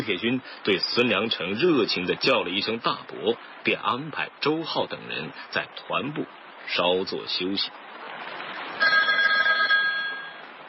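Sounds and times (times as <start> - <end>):
speech: 0.0 - 7.8
telephone bell ringing with metallic trill: 8.8 - 10.5.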